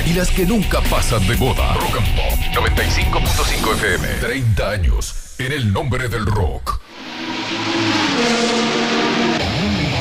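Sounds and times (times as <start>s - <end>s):
speech: 0.1s - 6.8s
racing car engine revving loudly: 6.9s - 10.0s.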